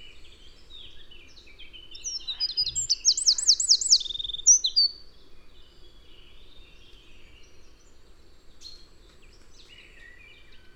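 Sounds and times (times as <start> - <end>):
Eurasian wren Troglodytes troglodytes song with fast high trills: 0.0 - 10.7.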